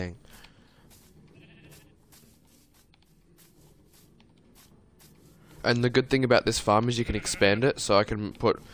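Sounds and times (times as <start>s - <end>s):
speech: 0.0s - 0.2s, 5.6s - 8.7s
dense steady rustling: 0.2s - 6.6s
sheep bleating: 1.3s - 2.0s, 7.0s - 7.8s.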